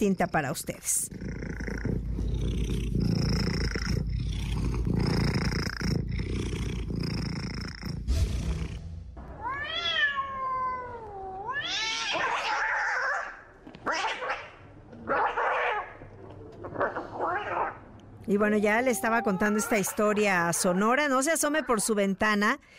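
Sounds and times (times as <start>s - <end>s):
speech: 0.0s - 1.5s, 2.2s - 3.4s, 18.3s - 22.7s
cats fighting with low rough growling: 0.8s - 8.1s, 9.4s - 17.9s, 18.8s - 21.9s
cats fighting with wavering yowls and shrill screeching cries: 9.4s - 14.5s, 15.1s - 16.0s, 17.2s - 17.8s, 18.6s - 21.8s.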